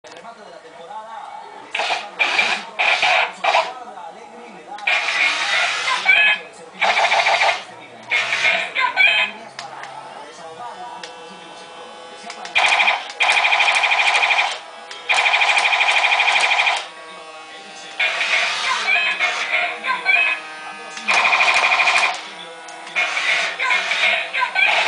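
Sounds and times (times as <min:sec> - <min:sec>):
toy robot: 0:01.7 - 0:03.8, 0:04.8 - 0:09.3, 0:12.3 - 0:16.9, 0:18.0 - 0:24.8.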